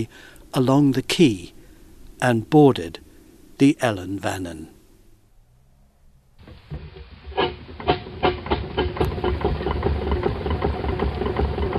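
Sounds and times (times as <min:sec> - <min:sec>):
speech: 0:00.0 - 0:01.6, 0:02.2 - 0:03.0, 0:03.6 - 0:04.8
steamroller engine running: 0:06.8 - 0:11.7.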